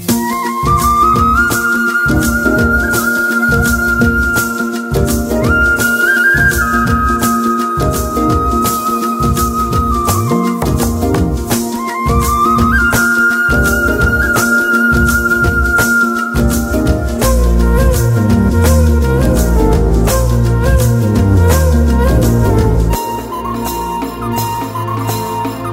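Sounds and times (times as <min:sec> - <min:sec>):
flute tone: 0:00.0 - 0:25.7.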